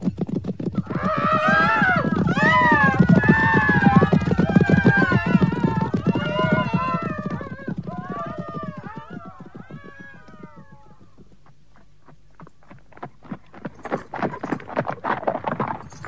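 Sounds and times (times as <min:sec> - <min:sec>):
galloping horse hoofbeats: 0:00.0 - 0:16.0
horse whinnying: 0:00.8 - 0:11.1.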